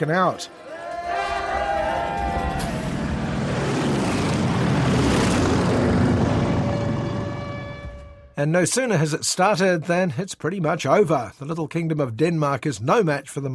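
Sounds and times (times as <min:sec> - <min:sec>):
speech: 0:00.0 - 0:00.6, 0:08.4 - 0:13.5
low-flying propeller planes passing overhead: 0:01.2 - 0:08.2.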